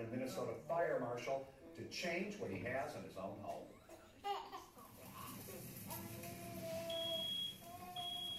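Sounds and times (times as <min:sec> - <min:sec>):
speech: 0:00.0 - 0:04.4
low murmur: 0:03.7 - 0:08.3
smoke alarm being tested with shrill high-pitched electronic tones: 0:06.9 - 0:08.3.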